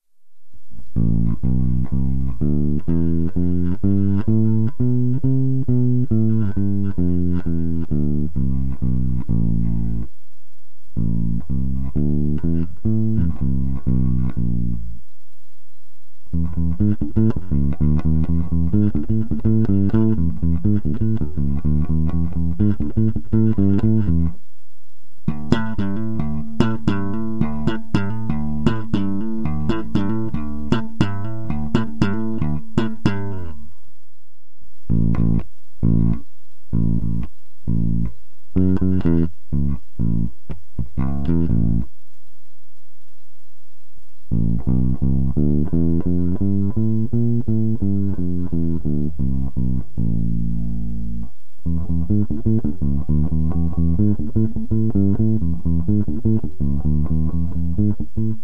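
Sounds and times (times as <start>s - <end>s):
Fender bass guitar with tapewound strings: 0.8s - 10.2s, 10.8s - 15.1s, 16.2s - 24.5s, 25.2s - 33.9s, 34.8s - 42.0s, 44.2s - 58.4s.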